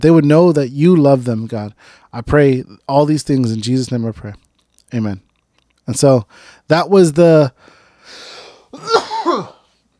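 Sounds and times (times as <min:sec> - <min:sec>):
speech: 0:00.0 - 0:05.3, 0:05.9 - 0:07.7
person coughing: 0:08.7 - 0:09.7.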